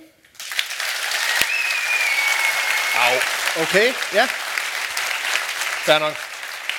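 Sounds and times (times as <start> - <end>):
audience clapping to vote: 0.4 - 6.7
audience whoops and whistles: 1.2 - 3.2
speech: 3.0 - 4.4, 5.8 - 6.2.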